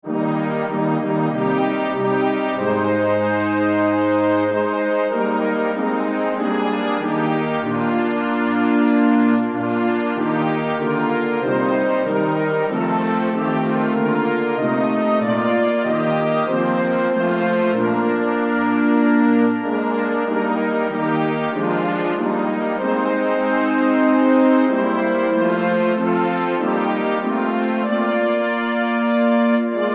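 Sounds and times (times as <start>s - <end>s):
brass ensemble playing: 0.0s - 29.9s.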